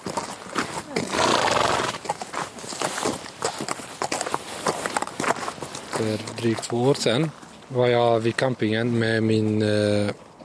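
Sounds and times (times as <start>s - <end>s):
horse hooves clopping in a stable in Tingsryd, Småland, Sweden: 0.0s - 10.4s
horse whinnying in a stable in Tingsryd, Småland, Sweden: 1.0s - 2.0s
speech: 6.0s - 10.2s.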